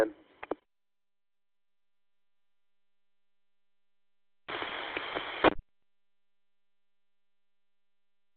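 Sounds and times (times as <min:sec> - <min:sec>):
radio open-carrier hiss from a keyed transmitter: 0:00.0 - 0:00.6, 0:04.5 - 0:05.6.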